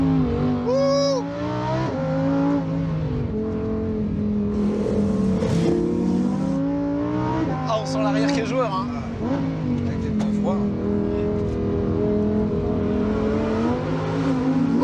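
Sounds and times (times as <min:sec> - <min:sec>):
car engine revving and accelerating on a road: 0:00.0 - 0:14.8.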